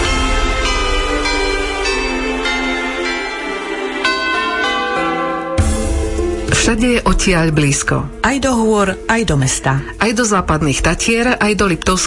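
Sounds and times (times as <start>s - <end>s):
church bells pealing over the landscape: 0.0s - 7.8s
speech: 6.7s - 12.0s.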